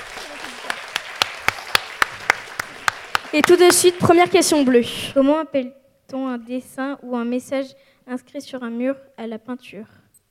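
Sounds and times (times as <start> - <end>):
audience applause: 0.0 - 4.8
speech: 3.3 - 10.0.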